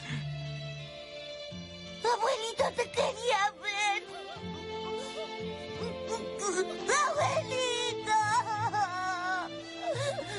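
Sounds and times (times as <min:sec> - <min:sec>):
speech: 0:02.1 - 0:03.6
child wailing and sobbing: 0:02.6 - 0:10.3.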